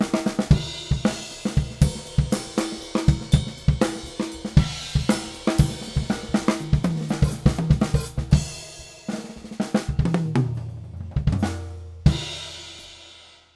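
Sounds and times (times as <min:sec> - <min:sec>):
acoustic drums: 0:00.0 - 0:13.4.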